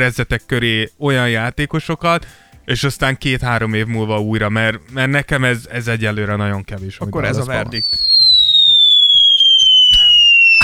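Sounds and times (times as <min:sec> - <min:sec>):
speech: 0:00.0 - 0:08.2
loud high falling whistle: 0:07.8 - 0:10.6.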